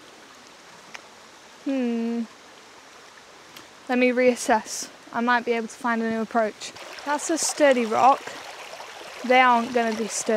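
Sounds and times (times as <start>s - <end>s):
flowing river water: 0.0s - 10.3s
person humming: 1.7s - 2.3s
speech: 1.7s - 2.4s, 3.9s - 8.4s, 9.2s - 10.3s.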